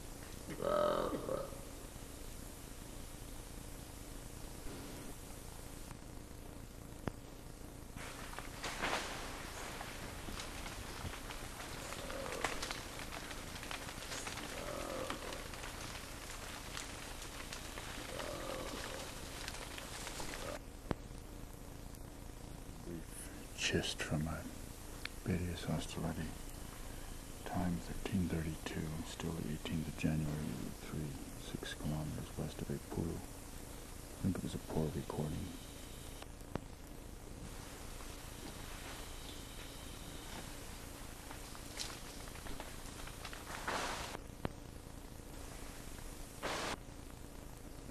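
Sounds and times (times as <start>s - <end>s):
steady hiss of noise: 0.0s - 47.8s
two animals roaring and grumbling: 0.5s - 1.7s, 10.3s - 20.6s
speech: 23.7s - 24.5s, 25.3s - 26.4s, 27.8s - 33.4s, 34.2s - 35.7s.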